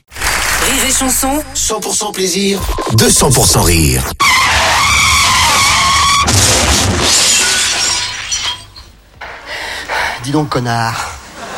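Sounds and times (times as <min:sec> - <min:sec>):
car crash: 0:00.1 - 0:01.7, 0:04.2 - 0:08.9
speech: 0:00.8 - 0:04.2, 0:10.3 - 0:11.0
car skid with long tonal tire screech: 0:04.2 - 0:06.3
glass shattering: 0:05.6 - 0:09.0.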